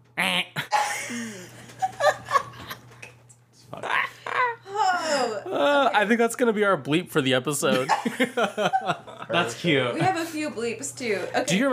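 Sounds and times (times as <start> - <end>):
faint steady hum: 0.0 - 11.7
person imitating a goose honk: 0.2 - 0.7
laughter and giggling: 0.7 - 2.9, 7.8 - 9.3
speech: 6.0 - 11.7.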